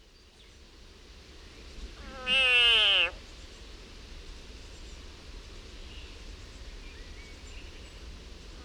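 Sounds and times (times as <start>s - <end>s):
frog in agony: 2.0s - 3.2s.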